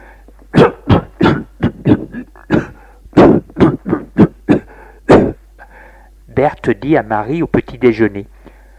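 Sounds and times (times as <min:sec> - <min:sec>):
harsh raspy coughing: 0:00.5 - 0:05.7
speech: 0:06.4 - 0:08.3.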